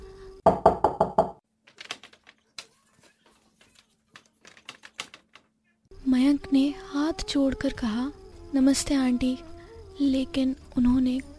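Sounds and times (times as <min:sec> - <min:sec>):
knocking on the wooden door of a house in Bangalore: 0:00.5 - 0:01.4
speech: 0:06.5 - 0:11.3.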